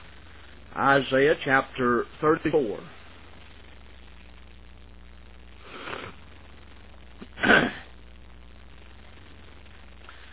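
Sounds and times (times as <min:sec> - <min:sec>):
speech: 0:00.8 - 0:03.0
soft breathy sniffle: 0:05.6 - 0:06.2, 0:07.2 - 0:07.9
person clearing throat: 0:07.2 - 0:07.9.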